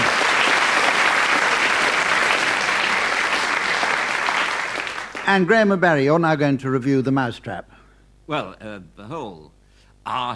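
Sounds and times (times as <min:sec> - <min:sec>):
audience applause: 0:00.0 - 0:05.6
speech: 0:05.3 - 0:10.3.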